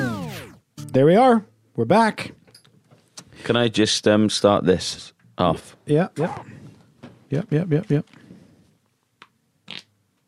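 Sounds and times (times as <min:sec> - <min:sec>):
speech: 0:01.0 - 0:02.4, 0:03.4 - 0:06.6, 0:07.3 - 0:08.2
short thin squeaky fart: 0:09.6 - 0:10.0.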